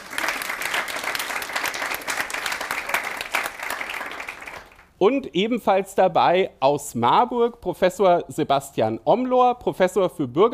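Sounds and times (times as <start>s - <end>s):
audience applause: 0.0s - 4.9s
speech: 5.0s - 10.5s.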